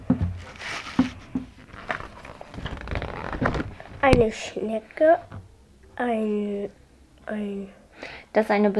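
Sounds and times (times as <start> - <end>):
paper book page being turned: 0.5 - 4.3
speech: 4.0 - 5.4, 6.0 - 8.7.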